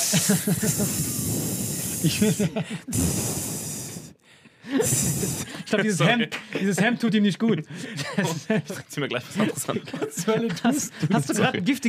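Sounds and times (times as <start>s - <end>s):
laughter: 0.0s - 1.2s, 1.9s - 3.0s, 4.6s - 11.8s
voice imitating a snake's hiss: 0.0s - 4.2s, 4.8s - 5.6s
speech: 0.1s - 3.5s, 5.7s - 11.8s.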